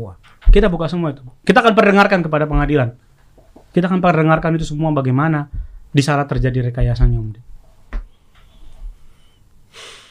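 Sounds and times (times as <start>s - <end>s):
speech: 0.0s - 3.1s, 3.7s - 7.5s
person breathing in deeply: 8.4s - 10.0s
person sniffing: 8.4s - 10.0s.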